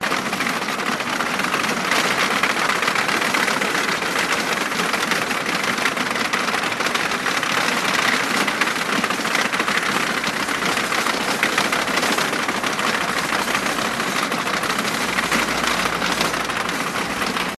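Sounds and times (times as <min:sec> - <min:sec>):
cargo trolley rolling: 0:00.0 - 0:17.5.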